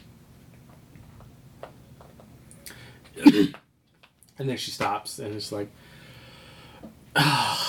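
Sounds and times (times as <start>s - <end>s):
short sharp coughing: 3.2s - 3.6s
speech: 3.3s - 3.6s, 4.4s - 6.0s, 7.2s - 7.6s.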